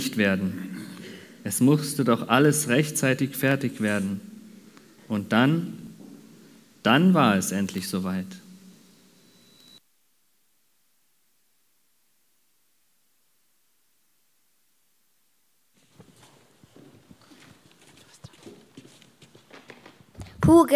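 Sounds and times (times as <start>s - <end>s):
speech: 0.2s - 0.7s, 1.4s - 4.3s, 5.1s - 5.8s, 6.8s - 8.4s, 20.5s - 20.7s
horse hooves clip-clopping: 15.8s - 20.3s.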